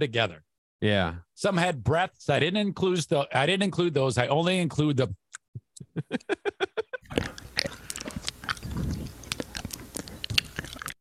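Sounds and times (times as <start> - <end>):
speech: 0.0 - 5.2, 6.0 - 6.6
laughter: 5.8 - 7.2
amplified chewing and eating noises: 7.0 - 10.9.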